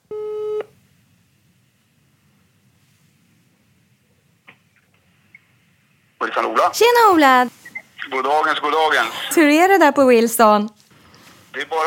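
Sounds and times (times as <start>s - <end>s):
loud electronic telephone ringing tone: 0.0s - 0.7s
speech: 6.2s - 10.8s, 11.6s - 11.8s.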